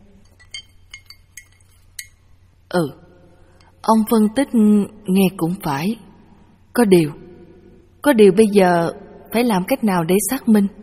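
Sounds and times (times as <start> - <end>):
low steady hum: 0.0 - 10.8
spoon clinking against a glass while stirring coffee: 0.2 - 2.3
speech: 2.7 - 3.0, 3.9 - 6.0, 6.8 - 7.2, 8.0 - 10.8.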